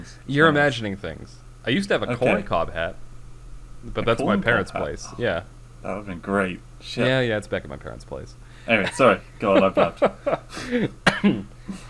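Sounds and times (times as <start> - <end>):
speech: 0.0 - 3.0, 3.8 - 11.8
faint trailing breath: 8.4 - 8.7
laughter: 8.8 - 11.4
person coughing: 10.8 - 11.5.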